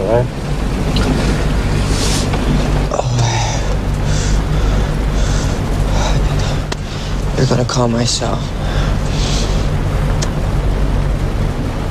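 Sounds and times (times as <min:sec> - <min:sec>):
vehicle engine idling: 0:00.0 - 0:11.8
speech: 0:00.1 - 0:00.4, 0:07.4 - 0:08.9
faint hiss: 0:01.0 - 0:10.4.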